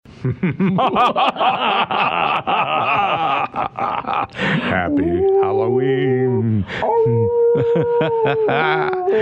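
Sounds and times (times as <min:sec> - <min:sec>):
laughter: 0:00.2 - 0:04.8, 0:07.1 - 0:09.2
speech: 0:00.2 - 0:09.2
person imitating a wolf howl on Halloween: 0:04.9 - 0:09.2.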